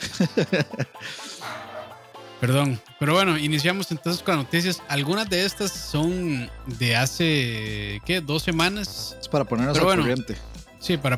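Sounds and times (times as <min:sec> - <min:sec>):
laughter: 0:00.0 - 0:02.0
speech: 0:00.2 - 0:01.7, 0:02.4 - 0:11.1
female dog barking excitedly: 0:01.4 - 0:02.2.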